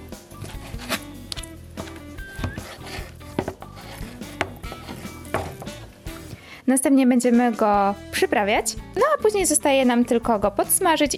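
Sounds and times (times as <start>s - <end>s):
knife dicing raw chicken into cubes on a cutting board: 0.4s - 5.9s
speech: 6.7s - 11.1s.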